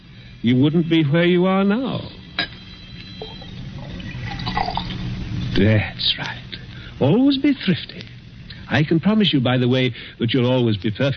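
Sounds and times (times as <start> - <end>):
speech: 0.4 - 2.2, 5.6 - 8.1, 8.7 - 11.1
brandy pouring into a glass decanter: 3.2 - 5.1.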